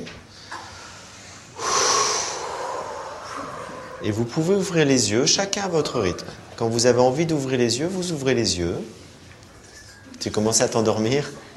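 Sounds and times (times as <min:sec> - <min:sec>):
several people taking a deep breath together: 0:00.3 - 0:04.0
speech: 0:04.0 - 0:09.0, 0:10.2 - 0:11.4.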